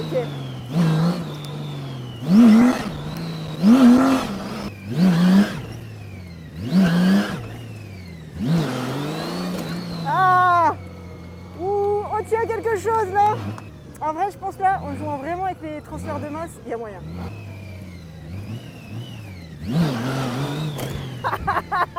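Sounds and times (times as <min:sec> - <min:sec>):
V6 car engine revving and idling: 0:00.0 - 0:21.9
speech: 0:00.2 - 0:00.9, 0:14.2 - 0:17.3
laughter: 0:21.1 - 0:21.9.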